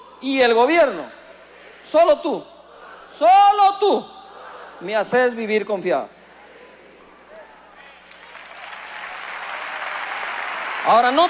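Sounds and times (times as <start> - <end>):
speech: 0.2 - 1.2, 1.8 - 2.5, 3.2 - 4.2, 4.8 - 6.2, 10.8 - 11.2
audience clapping: 7.8 - 11.2.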